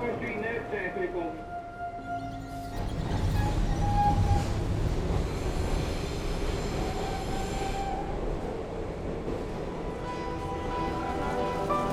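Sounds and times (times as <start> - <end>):
subway train rumbling along the tracks: 0.0 - 11.9
thin metallic subway wheel squeals: 2.0 - 4.6.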